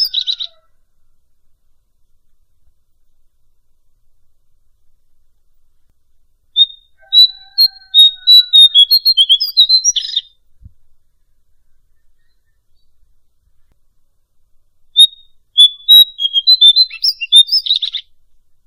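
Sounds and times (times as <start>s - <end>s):
bird song: 0.0s - 1.3s, 6.5s - 14.0s, 14.9s - 18.2s.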